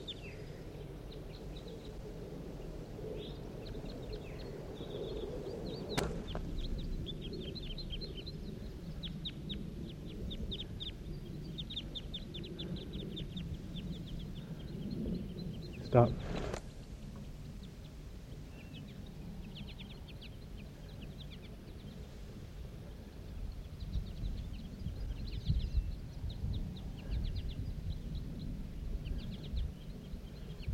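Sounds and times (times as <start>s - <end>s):
many small birds chirping and twittering: 0.0s - 30.7s
flock of birds fluttering while taking off: 5.7s - 7.0s, 15.9s - 17.6s
speech: 15.9s - 16.3s.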